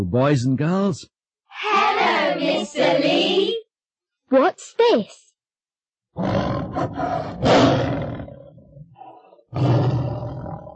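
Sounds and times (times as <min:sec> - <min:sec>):
speech: 0:00.1 - 0:03.6, 0:04.3 - 0:05.2, 0:06.2 - 0:08.0, 0:09.5 - 0:10.0
deep powerful tiger roar: 0:06.2 - 0:10.7.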